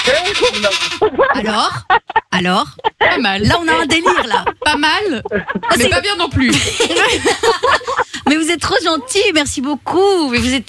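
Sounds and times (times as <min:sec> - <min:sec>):
person imitating a goat bleating: 0:00.0 - 0:01.1
laughter: 0:00.0 - 0:09.3
speech: 0:00.1 - 0:10.6.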